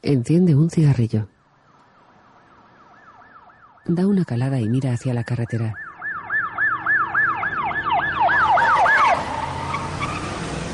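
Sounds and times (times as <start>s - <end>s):
speech: 0.0s - 1.3s, 3.9s - 5.8s
traffic rumble: 0.0s - 10.7s
rapid wailing ambulance siren passing on the road: 2.3s - 10.7s.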